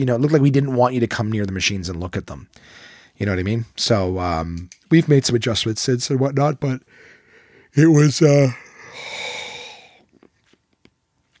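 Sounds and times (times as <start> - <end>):
speech: 0.0 - 7.1, 7.7 - 9.3
person yawning: 8.5 - 10.0.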